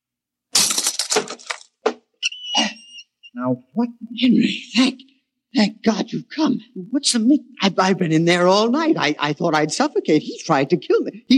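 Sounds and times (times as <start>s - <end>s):
lock being smashed open: 0.5s - 2.0s
speech: 3.4s - 11.3s.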